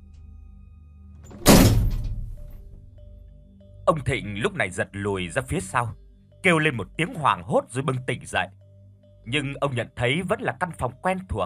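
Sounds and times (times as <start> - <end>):
head banging against a door frame: 1.3 - 2.4
speech: 3.9 - 8.6, 9.2 - 11.4.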